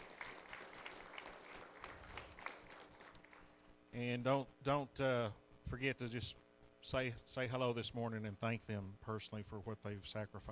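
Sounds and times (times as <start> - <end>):
congregation applauding: 0.0 - 3.5
speech: 3.9 - 10.5.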